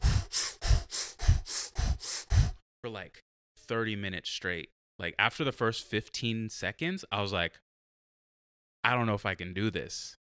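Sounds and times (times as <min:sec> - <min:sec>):
heavy rapid breathing in a breathwork exercise: 0:00.0 - 0:02.6
speech: 0:02.9 - 0:07.6, 0:08.8 - 0:10.2.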